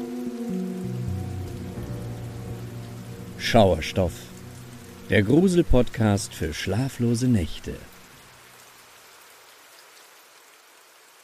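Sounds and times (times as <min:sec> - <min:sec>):
steady rain pattering on a surface: 0:00.0 - 0:11.2
speech: 0:03.4 - 0:04.3, 0:05.1 - 0:07.9.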